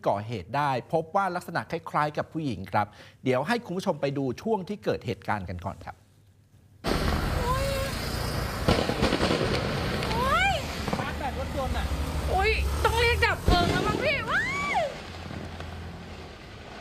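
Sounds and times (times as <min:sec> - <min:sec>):
speech: 0:00.0 - 0:06.0
fireworks whistles: 0:06.8 - 0:16.7.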